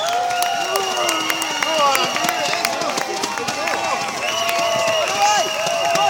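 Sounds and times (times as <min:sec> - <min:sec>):
high whistles: 0:00.0 - 0:02.8, 0:04.0 - 0:06.0
large crowd cheering and shouting as the torch approaches: 0:00.0 - 0:06.0
scattered clapping: 0:00.0 - 0:06.0.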